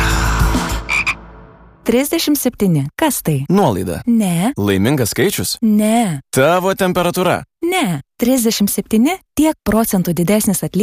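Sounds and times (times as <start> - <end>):
frog croaks as a sound effect in an advertisement: 0.9 - 1.2
speech: 1.9 - 10.8.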